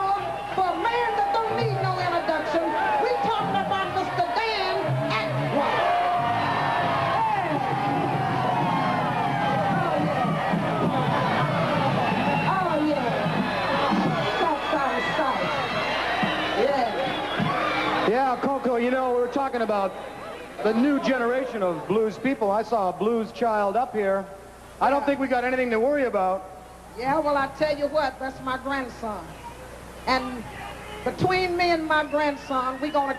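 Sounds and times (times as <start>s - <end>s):
large audience clapping: 0.0s - 21.4s
excited audience chatter: 0.0s - 22.0s
large audience cheering with whoops and shouts: 0.0s - 23.0s, 29.2s - 33.1s
speech: 19.5s - 29.4s, 30.0s - 33.1s.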